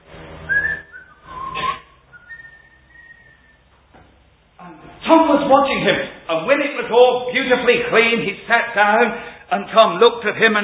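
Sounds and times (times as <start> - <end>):
person whistling a short melodic tune: 0.5 - 3.6
speech: 5.1 - 10.6.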